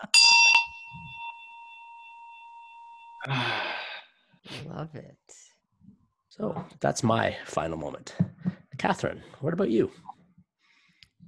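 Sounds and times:
small Tibetan bell struck and ringing: 0.0 - 3.3
speech: 3.2 - 3.7, 4.5 - 10.1.

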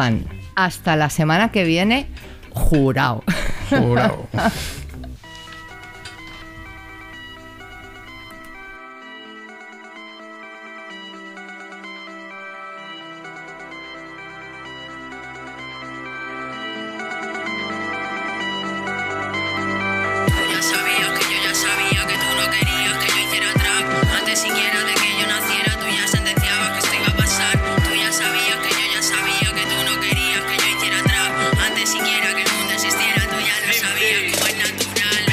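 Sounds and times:
speech: 0.0 - 4.8
sustained chords in rap song intro: 0.0 - 35.3
laughter: 3.3 - 4.9
loud punchy hip-hop beat with steady kicks: 12.8 - 35.3.

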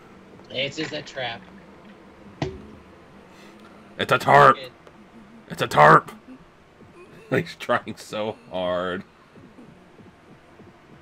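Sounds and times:
faint hum: 0.0 - 11.0
speech: 0.5 - 1.6, 4.0 - 4.8, 5.5 - 6.2, 7.3 - 9.1
heartbeat sound effect: 1.4 - 3.3, 4.7 - 7.6, 8.3 - 11.0.

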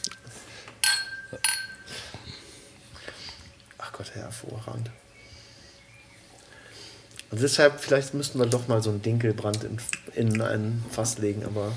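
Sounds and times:
glasses clinking in a toast: 0.8 - 2.3
speech: 4.0 - 5.0, 7.3 - 11.7.

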